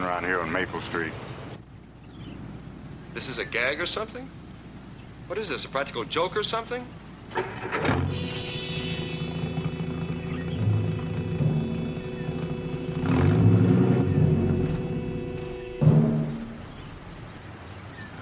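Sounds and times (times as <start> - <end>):
speech: 0.2 - 1.4, 3.2 - 4.4, 5.3 - 8.5
car engine starting and stopping: 7.1 - 18.1.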